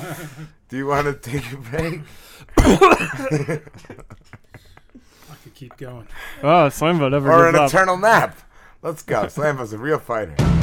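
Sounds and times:
sharp harsh coughs: 0.0s - 3.7s
speech: 0.2s - 4.4s, 5.4s - 10.6s
laughter: 3.0s - 6.2s.

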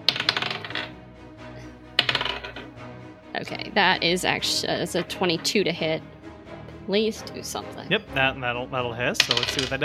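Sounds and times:
set of dice rolling across a hard tabletop in a tabletop game: 0.0s - 0.9s, 2.0s - 2.7s, 9.2s - 9.8s
speech: 3.4s - 6.2s, 6.9s - 9.8s.

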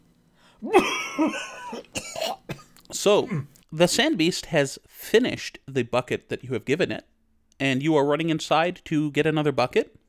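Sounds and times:
speech: 0.6s - 1.8s, 3.0s - 10.0s
harsh raspy dry coughing: 0.6s - 3.6s.

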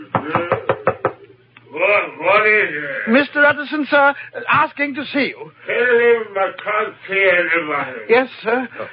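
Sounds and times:
firm knocks on a laboratory door: 0.1s - 1.2s
speech: 0.2s - 0.6s, 2.4s - 8.9s.

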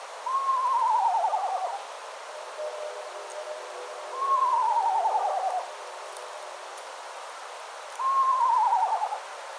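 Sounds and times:
eastern screech owl descending whinny-like tremolo call: 0.2s - 1.8s, 4.1s - 5.7s, 8.0s - 9.2s.

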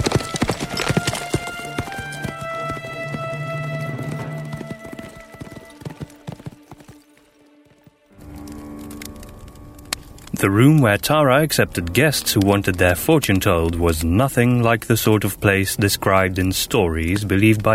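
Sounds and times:
horse hooves clip-clopping as the horse rides off: 0.0s - 13.7s
speech: 10.4s - 17.7s.

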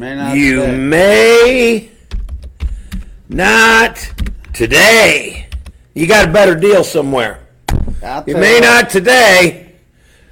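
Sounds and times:
speech: 0.0s - 1.9s, 3.3s - 7.4s, 8.0s - 9.6s
computer keyboard typing: 1.4s - 4.7s, 5.4s - 5.8s.

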